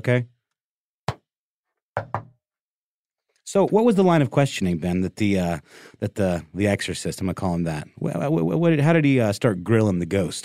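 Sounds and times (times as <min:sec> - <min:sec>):
speech: 0:00.0 - 0:00.3, 0:03.5 - 0:10.4
sharp knocks on a hard surface answering a yes-or-no question: 0:02.0 - 0:02.4.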